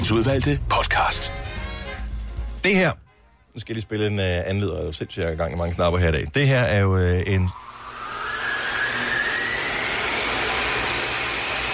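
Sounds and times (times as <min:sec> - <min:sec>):
speech: 0:00.0 - 0:01.4, 0:02.6 - 0:03.0, 0:03.6 - 0:07.6
powerful vacuum cleaner running: 0:07.5 - 0:11.7.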